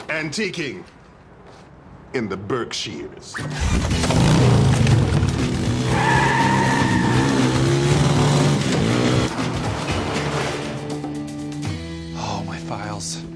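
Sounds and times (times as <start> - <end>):
speech: 0.1 - 1.0, 2.1 - 4.6
motor vehicle engine revving during a test drive: 3.6 - 10.8.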